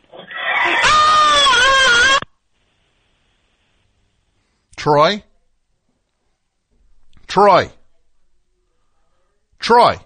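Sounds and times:
rabid horse screaming while attacking: 0.1s - 2.3s
speech: 4.8s - 5.3s, 7.4s - 7.8s, 9.6s - 10.0s.

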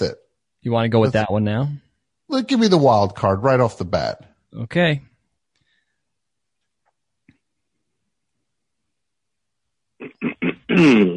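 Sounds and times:
speech: 0.0s - 5.1s, 10.8s - 11.1s
caller clearing throat: 10.0s - 11.1s.

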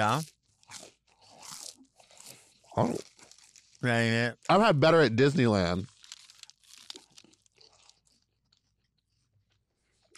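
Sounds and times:
speech: 0.0s - 0.8s, 2.8s - 3.1s, 3.8s - 5.9s
crisp crunching bites into a footlong churro: 0.0s - 3.8s, 5.8s - 8.9s, 10.0s - 10.1s
chewing a churro: 0.1s - 3.8s, 5.9s - 9.0s, 10.0s - 10.1s.

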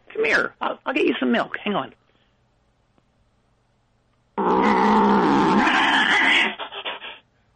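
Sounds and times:
speech: 0.2s - 2.0s
alley cat growling and snarling: 4.4s - 6.6s.

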